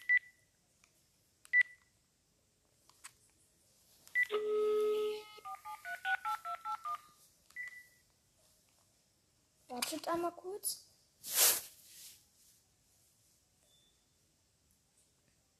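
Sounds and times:
phone dialing in a video game: 0:04.2 - 0:04.5, 0:05.3 - 0:07.8
speech: 0:09.9 - 0:11.4.

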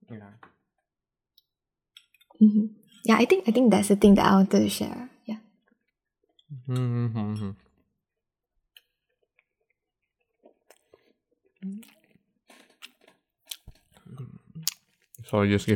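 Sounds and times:
speech: 0:02.4 - 0:05.1, 0:06.7 - 0:07.5, 0:15.3 - 0:15.7
person chewing a sausage: 0:05.8 - 0:15.3.

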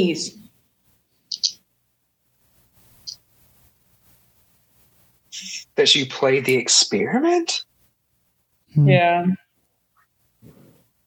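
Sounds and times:
speech: 0:00.0 - 0:00.4, 0:05.8 - 0:07.7, 0:08.7 - 0:09.4
birds chirping: 0:01.3 - 0:01.6.

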